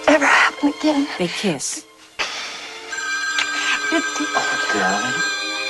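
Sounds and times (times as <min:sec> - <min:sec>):
speech: 0:00.2 - 0:01.9, 0:03.9 - 0:05.4
telephone ringing with bright electronic trill: 0:02.9 - 0:05.6.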